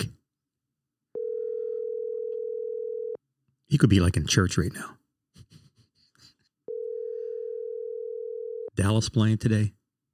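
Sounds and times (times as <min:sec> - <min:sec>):
telephone ringing tone on an outgoing call: 0:01.2 - 0:03.2, 0:06.7 - 0:08.7
speech: 0:03.7 - 0:05.0, 0:08.8 - 0:09.8.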